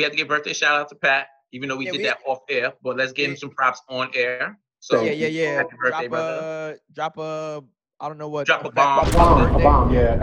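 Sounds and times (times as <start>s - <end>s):
speech: 0.0s - 10.2s
bomb explosion sound effect: 9.0s - 10.2s.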